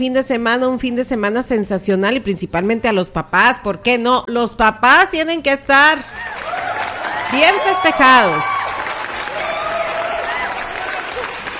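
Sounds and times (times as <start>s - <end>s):
speech: 0.0s - 6.3s, 7.3s - 8.6s
crowd applause: 6.2s - 11.5s.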